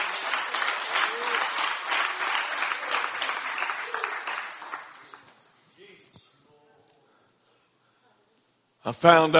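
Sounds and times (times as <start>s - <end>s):
large audience clapping hands: 0.0s - 5.3s
speech: 8.9s - 9.3s.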